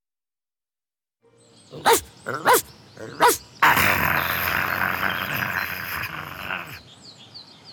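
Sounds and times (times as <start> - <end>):
speech: 1.7 - 2.6
dog with a big bone growling low: 1.7 - 6.8
dog with a big bone barking: 1.8 - 3.4.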